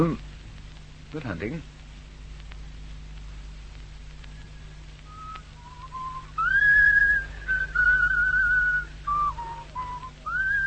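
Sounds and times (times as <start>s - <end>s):
speech: 0.0s - 0.3s, 1.1s - 1.7s
low steady hum: 0.0s - 10.6s
person whistling a tune: 5.1s - 10.6s.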